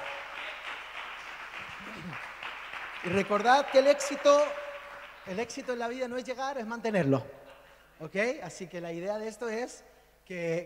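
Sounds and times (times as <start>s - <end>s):
crowd applauding in a praise ministry: 0.0s - 6.2s
speech: 3.0s - 4.6s, 5.3s - 7.4s, 8.0s - 10.6s.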